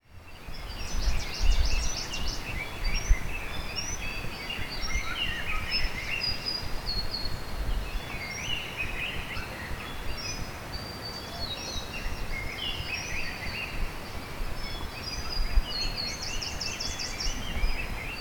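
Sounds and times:
birds on Emei Shan mountain: 0.1s - 18.1s
river on Emei Shan mountain: 5.8s - 18.1s.

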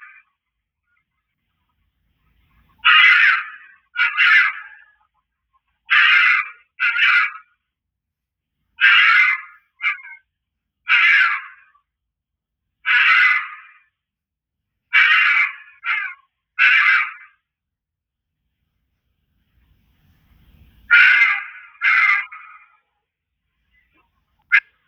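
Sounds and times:
fox giving harsh hoarse screams and a brief yelp: 0.0s - 0.3s, 2.8s - 5.0s, 5.8s - 7.5s, 8.8s - 10.2s, 10.8s - 11.8s, 12.8s - 13.9s, 14.9s - 17.4s, 20.9s - 22.8s.

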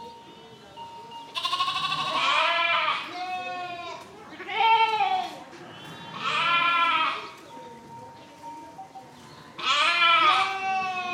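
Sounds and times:
lambs bleating: 1.4s - 5.2s, 6.1s - 7.2s, 9.6s - 11.1s.

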